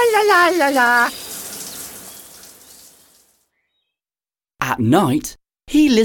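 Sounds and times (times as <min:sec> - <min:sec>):
shower water running: 0:00.0 - 0:03.5
speech: 0:00.2 - 0:01.3, 0:04.6 - 0:06.0.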